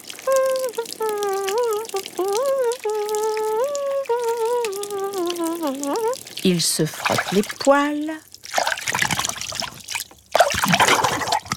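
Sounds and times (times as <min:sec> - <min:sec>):
person humming or singing wordlessly: 0:00.0 - 0:06.2
shower running in a bathroom: 0:00.0 - 0:11.5
speech: 0:06.5 - 0:09.0.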